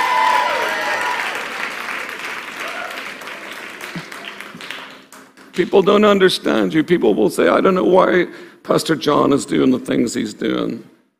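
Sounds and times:
faint voices and cheers: 0.0s - 1.6s
crowd applauding: 0.0s - 5.6s
speech: 5.6s - 10.9s.

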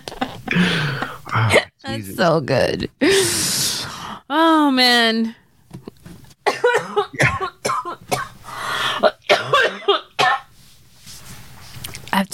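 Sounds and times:
harsh hacking coughing fit with wheezy rasp: 0.4s - 1.8s, 6.4s - 10.5s
speech: 1.4s - 3.4s, 4.3s - 5.4s.

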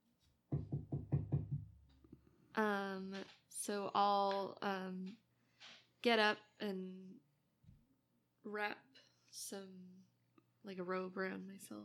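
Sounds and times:
knocking on a door: 0.5s - 1.8s
speech: 2.6s - 5.2s, 6.0s - 7.2s, 8.5s - 11.8s.

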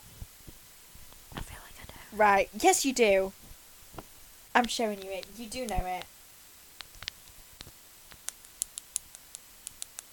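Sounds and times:
speech: 2.2s - 3.4s, 4.6s - 6.1s
sharp quiet clicks: 4.6s - 6.1s, 6.8s - 10.1s.

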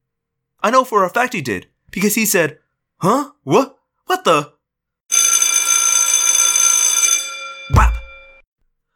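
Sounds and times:
speech: 0.6s - 4.6s
loud electric bell ringing at race starting gate: 5.1s - 8.4s.

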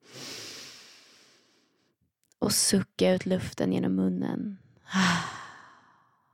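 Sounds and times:
single deep inhale through the nose: 0.0s - 1.8s
speech: 2.5s - 5.3s.

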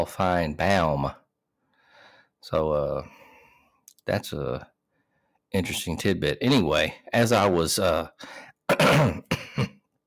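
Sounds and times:
speech: 0.0s - 1.2s, 2.4s - 3.2s, 4.0s - 4.7s, 5.5s - 9.8s
person clearing throat: 8.7s - 9.9s.

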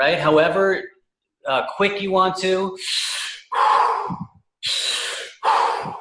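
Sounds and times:
speech: 0.0s - 3.2s
rhythmic breathing during a breathing exercise: 2.8s - 6.0s.

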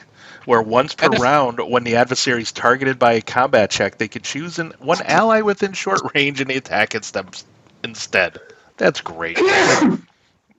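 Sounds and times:
speech: 0.4s - 10.1s
person sneezing: 9.4s - 10.1s.

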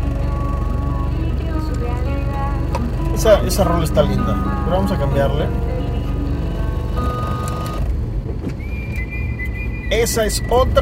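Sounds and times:
brief high whines and tones from buses: 0.0s - 10.8s
two large buses idling and moving in traffic: 0.0s - 10.8s
speech: 3.2s - 5.8s, 9.9s - 10.8s.

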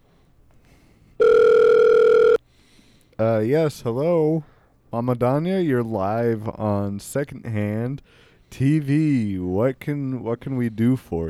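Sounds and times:
telephone ringing with an incoming call on a caller line: 1.2s - 2.4s
speech: 3.2s - 11.2s.

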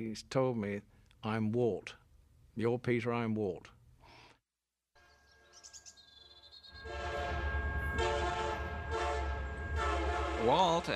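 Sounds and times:
speech: 0.0s - 2.0s, 2.6s - 3.8s, 10.4s - 10.9s
heavy rumble of a huge passing locomotive: 6.7s - 10.9s
train whistle blasts: 6.7s - 10.9s.

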